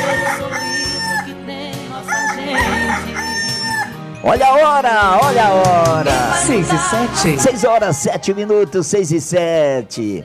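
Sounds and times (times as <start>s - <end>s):
rooster crowing: 0.0s - 1.3s, 2.1s - 4.0s
speech: 4.2s - 10.2s.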